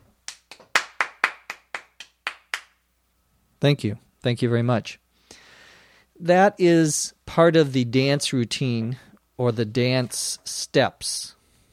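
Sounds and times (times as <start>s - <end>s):
single person clapping: 0.0s - 2.8s
speech: 3.6s - 5.0s, 6.2s - 11.4s.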